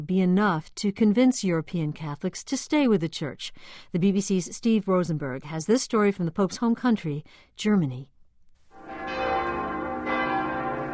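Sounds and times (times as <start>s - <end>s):
speech: 0.0s - 8.1s
church bells of the Church of St. Maximilian in Bavaria ringing for evening mass: 8.8s - 10.9s.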